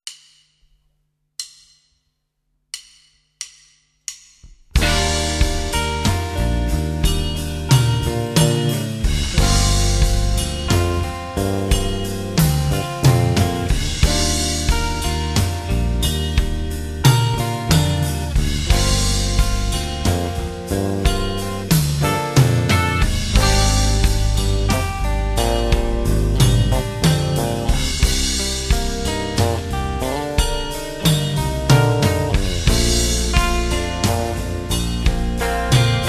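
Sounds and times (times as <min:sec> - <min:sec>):
backing track for eight-finger tapping: 0:04.7 - 0:36.0.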